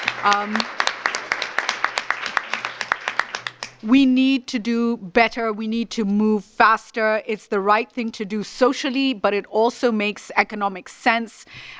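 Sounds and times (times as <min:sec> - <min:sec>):
audience applause for a woman speaker: 0:00.0 - 0:03.8
speech: 0:00.2 - 0:00.8, 0:03.8 - 0:11.7.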